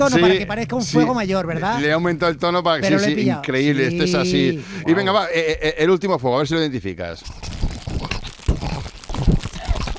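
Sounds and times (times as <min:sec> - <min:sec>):
speech: 0:00.0 - 0:07.5
man crinkling a plastic bag: 0:07.3 - 0:09.9
man making wet mouth clicks and smacking sounds: 0:07.3 - 0:09.9.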